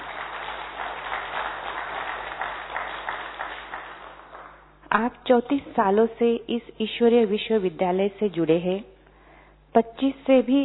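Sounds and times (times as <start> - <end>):
audience applause welcoming a speaker: 0.0 - 4.6
speech: 4.9 - 8.9, 9.7 - 10.6.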